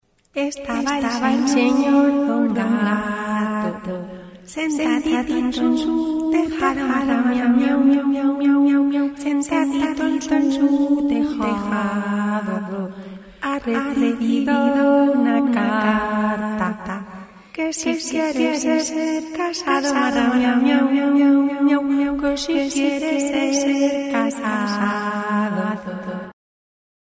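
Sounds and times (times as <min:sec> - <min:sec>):
Spanish child singer for cartoon dubbing series: 0:00.4 - 0:03.9, 0:04.5 - 0:12.8, 0:13.5 - 0:16.7, 0:17.6 - 0:25.7.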